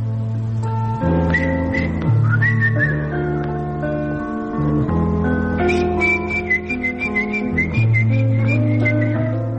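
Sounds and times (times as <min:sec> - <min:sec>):
steady instrumental accompaniment: 0:00.0 - 0:09.5
person whistling a melodic tune: 0:01.2 - 0:03.2, 0:05.6 - 0:09.5.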